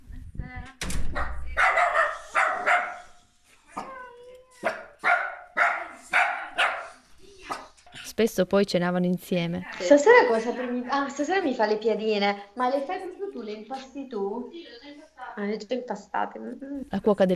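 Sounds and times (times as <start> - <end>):
dog barking and yelping: 1.1 - 3.2, 4.6 - 7.7
speech: 8.2 - 14.8, 15.4 - 17.3.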